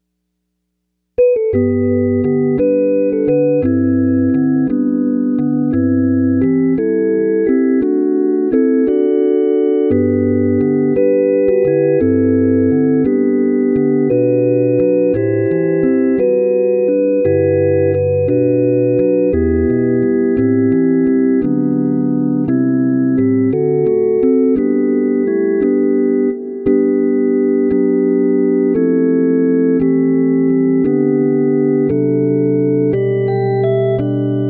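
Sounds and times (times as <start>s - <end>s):
organ accompaniment: 1.2s - 34.4s.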